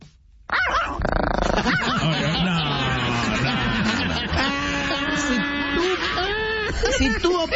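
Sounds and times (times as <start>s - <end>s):
small dog yapping and yelping sound effect: 0.5s - 1.1s
laughter: 1.4s - 7.5s.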